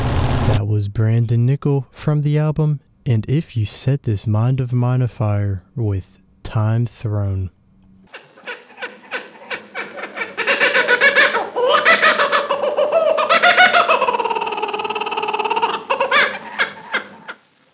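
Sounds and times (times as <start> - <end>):
speech: 0.5 - 7.6
kookaburra laughing call: 8.1 - 17.5.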